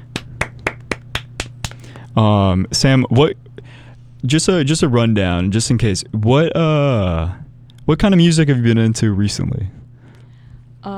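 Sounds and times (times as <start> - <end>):
people clapping: 0.0 - 2.0
speech: 2.2 - 9.8.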